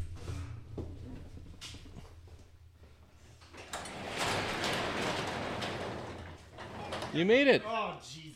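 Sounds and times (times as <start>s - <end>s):
door opened with clicks and knocks: 3.5s - 7.4s
speech: 7.1s - 8.2s.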